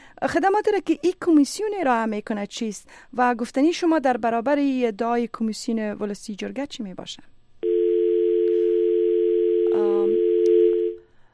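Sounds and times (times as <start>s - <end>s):
speech: 0.2s - 7.4s, 9.8s - 10.2s
telephone dial tone after call disconnects: 7.6s - 11.0s.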